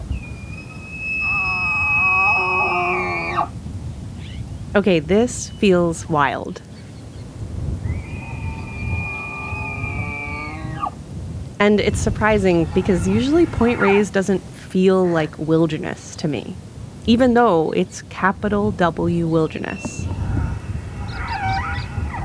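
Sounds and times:
elk bugling: 0.0 - 3.6, 7.8 - 11.0, 11.7 - 16.0, 19.0 - 22.2
low wind rumble: 0.0 - 22.2
speech: 4.8 - 6.7, 11.6 - 20.1.

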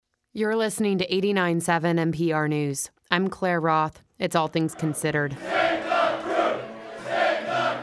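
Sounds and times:
speech: 0.4 - 5.8
crowd of fans cheering and whooping inside a brewery: 4.7 - 7.8.

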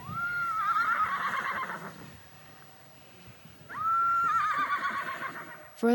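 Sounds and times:
horse neighing: 0.0 - 2.3, 3.7 - 5.8
speech: 5.8 - 5.9.

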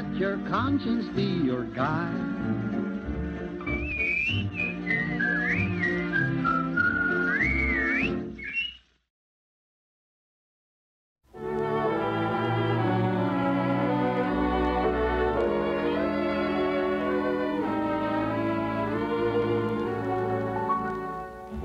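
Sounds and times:
full instrumental backing music: 0.0 - 8.3, 11.3 - 21.6
speech: 0.2 - 2.7
bright clear whistled melody: 3.6 - 8.9, 11.4 - 21.6.

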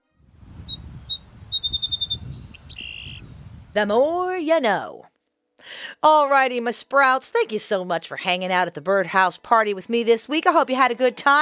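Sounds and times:
song sparrow singing: 0.4 - 4.3
speech: 3.7 - 5.1, 6.0 - 11.4.

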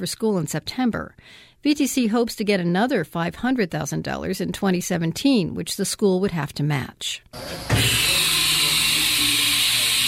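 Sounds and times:
speech: 0.0 - 8.4
drill press cutting a block held in a vise in a school lab: 7.4 - 10.0.

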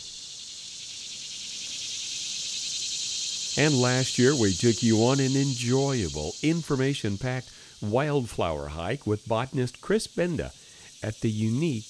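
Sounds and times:
insects chirping in a wooded creek bed by a waterfall: 0.0 - 11.8
speech: 3.6 - 11.8.

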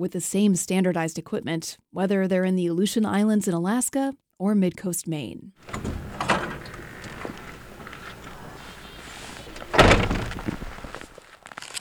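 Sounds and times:
speech: 0.0 - 6.0
front door thumping open and shutting with a solid knock: 5.6 - 11.4
soft footsteps of a woman walking outside: 5.6 - 11.7.

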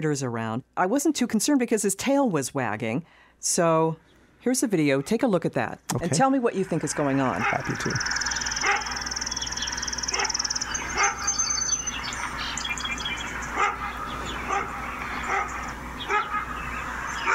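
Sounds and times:
speech: 0.0 - 8.3
faint birdsong chirping: 6.5 - 17.3
dog barking: 7.4 - 7.8, 8.6 - 8.9, 10.1 - 10.4, 11.0 - 11.3, 13.5 - 16.4.

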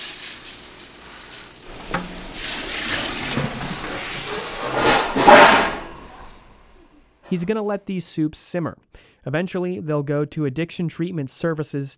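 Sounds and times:
water pouring into soup in a metal pot: 0.0 - 5.1
speech: 7.3 - 11.9.

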